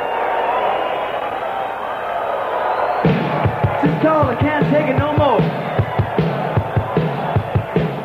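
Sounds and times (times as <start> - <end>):
large live audience cheering: 0.0 - 8.0
speech: 4.0 - 5.6.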